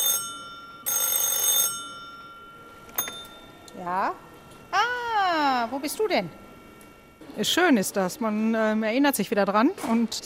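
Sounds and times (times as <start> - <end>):
old mechanical telephone bell ringing in a museum: 0.0 - 4.0
small clink: 2.9 - 3.8
speech: 3.8 - 6.4, 7.4 - 10.2.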